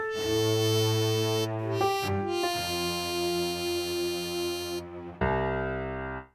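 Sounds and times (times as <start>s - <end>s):
sad ending music: 0.2s - 6.2s.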